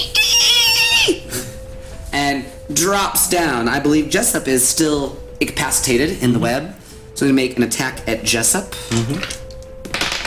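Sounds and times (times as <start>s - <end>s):
person imitating a squirrel's battle shriek: 0.0s - 1.2s
speech: 2.8s - 9.4s.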